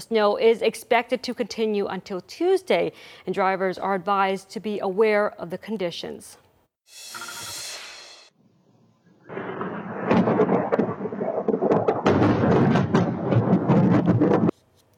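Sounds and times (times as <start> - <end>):
speech: 0.0 - 7.3
brief hiss: 6.9 - 8.3
thunder crack and rumble from a night thunderstorm in the Fraser Valley: 9.2 - 14.5.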